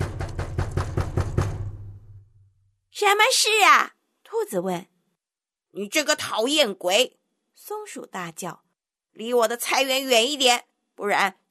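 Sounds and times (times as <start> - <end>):
hard angry knocking on a door: 0.0 - 2.2
speech: 3.0 - 4.9, 5.8 - 8.6, 9.2 - 11.4.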